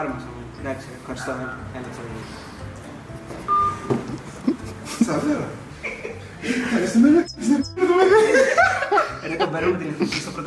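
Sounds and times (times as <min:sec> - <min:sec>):
speech: 0:00.0 - 0:02.5, 0:03.3 - 0:08.5, 0:09.2 - 0:10.4
electronic telephone keypad tone: 0:03.5 - 0:03.8
laughter: 0:04.0 - 0:10.4.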